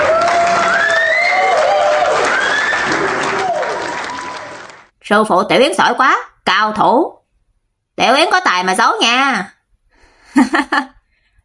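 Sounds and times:
crowd applause at a dart-throwing contest: 0.0 - 4.9
speech: 5.1 - 7.2, 8.0 - 9.6, 10.3 - 11.4.

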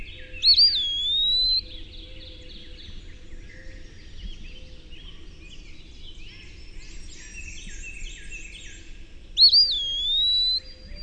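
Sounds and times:
quiet Eastern wood pewee chirping: 0.0 - 11.0
Eastern wood pewee plaintive whistle: 0.4 - 1.6, 9.4 - 11.0.

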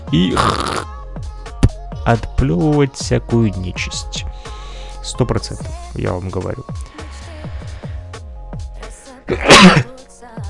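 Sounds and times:
person sneezing: 0.1 - 0.9, 9.3 - 9.9
speech: 0.1 - 0.9, 2.1 - 4.3, 5.0 - 7.0, 9.3 - 9.9.

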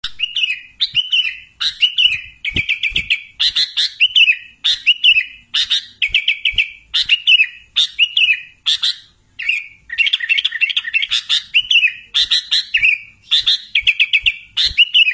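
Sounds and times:
sooty-headed bulbul in steady song: 0.0 - 15.1.

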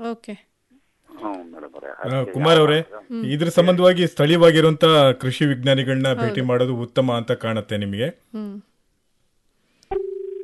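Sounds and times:
speech: 0.0 - 0.5, 1.2 - 8.7
steady pulsing telephone tone of an incoming phone-in call: 9.9 - 10.4.

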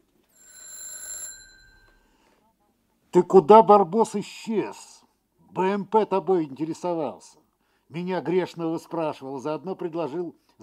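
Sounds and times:
electronic telephone ring: 0.3 - 2.2
speech: 3.1 - 4.9, 5.5 - 10.6.

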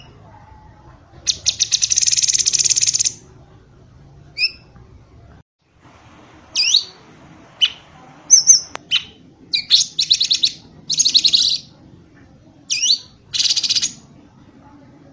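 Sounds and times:
bird song of sharp high chirps, slurred whistles and buzzy rattles: 1.2 - 3.2, 6.6 - 7.0, 7.6 - 11.7, 12.7 - 14.0.

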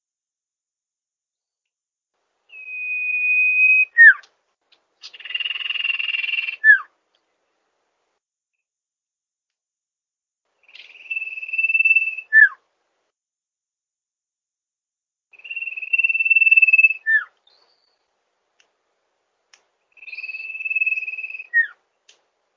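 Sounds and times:
bird song used for training songbirds: 2.5 - 4.3, 5.0 - 6.9, 10.6 - 12.6, 15.3 - 18.2, 19.9 - 22.1.

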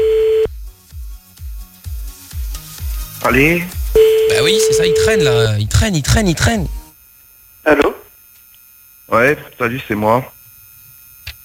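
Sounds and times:
telephone ringback tone on an outgoing call: 0.0 - 0.5, 4.0 - 5.5
speech: 3.3 - 3.8, 4.5 - 6.8, 7.6 - 8.0, 9.1 - 10.4.

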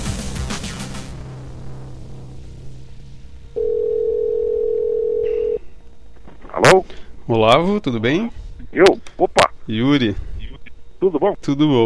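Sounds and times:
low steady hum on a telephone call: 1.0 - 11.8
single-pitched telephone tone on a call: 3.6 - 5.7
speech: 6.7 - 10.3, 11.0 - 11.8.

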